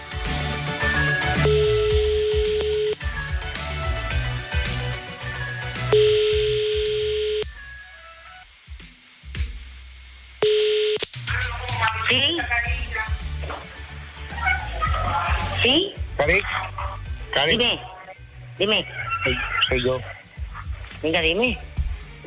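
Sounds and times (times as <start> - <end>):
loud music: 0.0 - 9.8, 10.5 - 22.2
telephone line tones after dialing a number: 1.4 - 3.0, 5.9 - 7.5, 10.4 - 11.0
speech: 17.4 - 17.9, 18.6 - 20.2, 21.0 - 22.2
laughter: 18.6 - 21.0.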